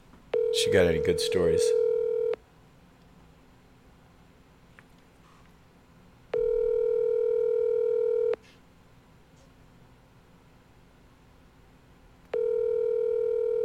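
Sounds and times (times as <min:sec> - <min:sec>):
phone ringback tone over a call line: 0:00.3 - 0:02.4, 0:06.3 - 0:08.4, 0:12.3 - 0:13.6
speech: 0:00.6 - 0:01.8.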